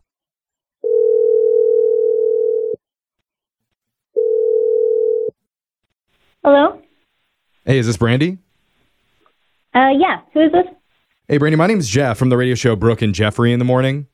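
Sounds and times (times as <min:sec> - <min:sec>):
telephone dial tone: 0:00.9 - 0:02.8, 0:04.2 - 0:05.3
speech: 0:07.7 - 0:08.5, 0:09.7 - 0:14.1.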